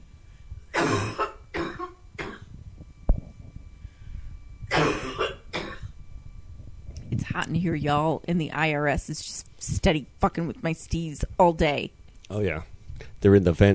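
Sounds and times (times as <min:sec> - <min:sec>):
person coughing hard: 0:00.8 - 0:02.5, 0:04.7 - 0:05.9
speech: 0:07.4 - 0:13.7.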